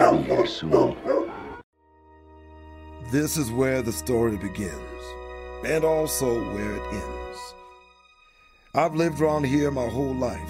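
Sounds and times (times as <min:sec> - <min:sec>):
dog barking: 0:00.0 - 0:01.6
speech: 0:00.2 - 0:01.1, 0:03.1 - 0:07.6, 0:08.7 - 0:10.4.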